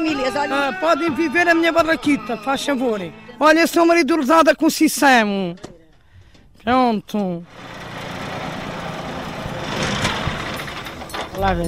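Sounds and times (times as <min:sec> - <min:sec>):
speech: 0:00.0 - 0:05.7, 0:06.6 - 0:07.7, 0:11.4 - 0:11.6
tractor engine running on Rua dos Pescadores: 0:07.5 - 0:11.6.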